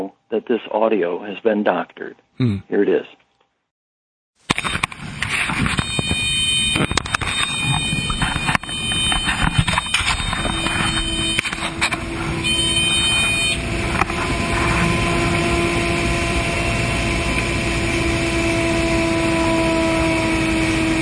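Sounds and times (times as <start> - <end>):
speech: 0.1 - 3.2
engine spinning past 15,000 RPM with a loud steady high whine: 4.5 - 21.0.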